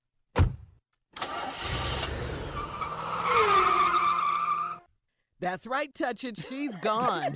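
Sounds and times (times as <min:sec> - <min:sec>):
sharp thud: 0:00.4 - 0:00.8
car engine roaring off: 0:01.2 - 0:04.8
car tires screeching: 0:01.2 - 0:04.9
speech: 0:05.4 - 0:07.3.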